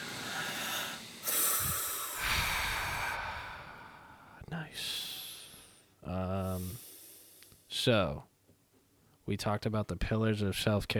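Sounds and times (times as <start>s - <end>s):
group of people taking a deep breath together: 0.0s - 7.7s
speech: 4.5s - 5.0s, 7.8s - 8.3s, 9.3s - 10.9s.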